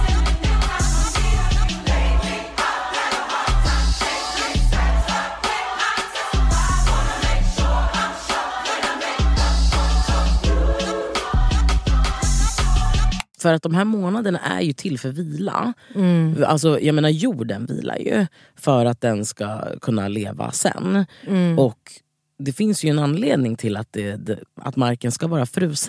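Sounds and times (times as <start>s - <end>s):
beat-driven music with heavy pulsing bass from a fashion show in Paris: 0.0s - 13.2s
speech: 13.4s - 25.8s.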